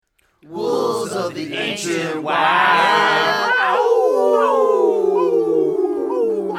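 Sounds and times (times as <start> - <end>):
speech: 0.4 - 4.7
wolves howling: 2.8 - 6.5.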